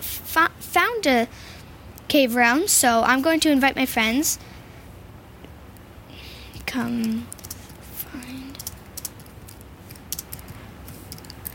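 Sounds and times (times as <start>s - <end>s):
low hum: 0.0s - 11.5s
speech: 0.4s - 1.4s, 2.1s - 4.5s, 6.7s - 7.4s
keyboard typing: 6.6s - 11.5s.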